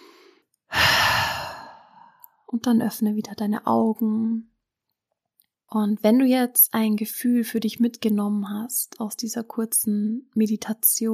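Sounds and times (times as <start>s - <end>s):
deep exhalation during a guided meditation: 0.0s - 2.2s
speech: 2.5s - 4.5s, 5.7s - 11.1s.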